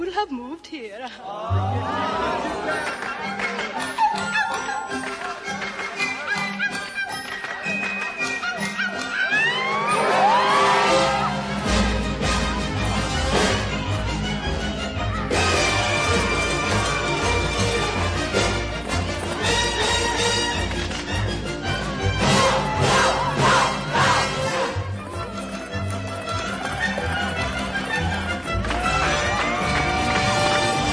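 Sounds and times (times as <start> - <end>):
speech: 0.2 - 4.4
laughter: 1.0 - 11.7, 22.3 - 30.9
full orchestra playing a musical theatre number: 9.7 - 30.9.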